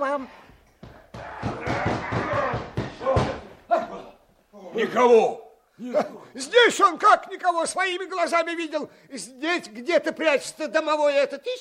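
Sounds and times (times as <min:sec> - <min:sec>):
speech: 0:00.0 - 0:00.4, 0:04.8 - 0:11.5
door being pounded and forced by armed streltsy: 0:01.1 - 0:03.6.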